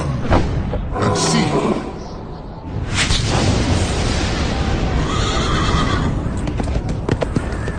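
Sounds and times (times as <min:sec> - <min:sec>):
heavy rumbling wash of noise: 0:00.2 - 0:07.7
white horse whinnying: 0:05.1 - 0:06.2.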